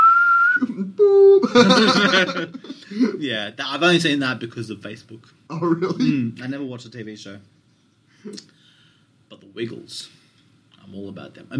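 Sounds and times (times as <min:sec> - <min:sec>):
person whistling a short tune: 0:00.0 - 0:01.5
speech: 0:01.0 - 0:07.6, 0:08.2 - 0:08.5, 0:09.3 - 0:10.2, 0:10.9 - 0:11.5
giggly laughter: 0:01.4 - 0:03.2.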